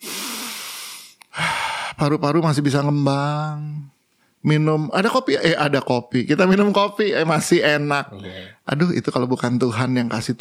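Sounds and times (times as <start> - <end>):
deep breath in and out: 0.0 - 2.0
speech: 2.0 - 10.4.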